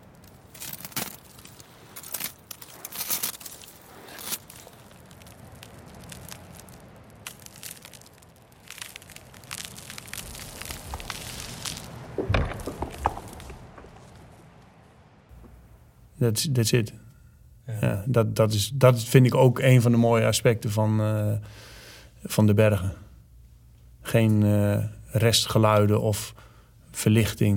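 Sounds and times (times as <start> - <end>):
footsteps crunching snow high in the mountains: 0.0 - 14.6
speech: 16.2 - 17.1, 18.1 - 23.0, 24.1 - 27.5.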